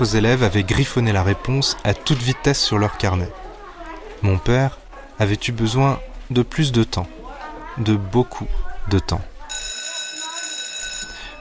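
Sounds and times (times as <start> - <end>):
speech: 0.0 - 3.4, 4.2 - 7.2, 7.8 - 9.7
electric school bell ringing at the end of the school day: 9.5 - 11.3.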